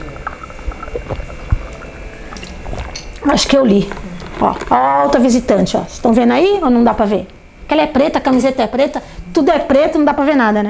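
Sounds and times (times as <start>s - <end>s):
low thumps: 0.0s - 3.0s
person drinking water: 0.0s - 3.2s, 3.8s - 4.8s
speech: 3.3s - 10.6s.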